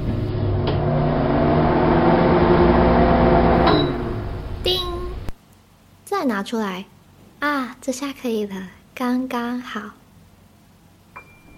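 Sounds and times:
microwave oven humming: 0:00.0 - 0:05.4, 0:11.1 - 0:11.5
short electronic microwave beep: 0:03.7 - 0:04.2
speech: 0:06.4 - 0:10.0.

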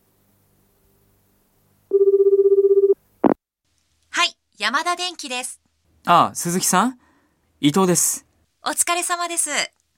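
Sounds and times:
telephone ringing: 0:01.9 - 0:03.0
speech: 0:04.6 - 0:09.7.

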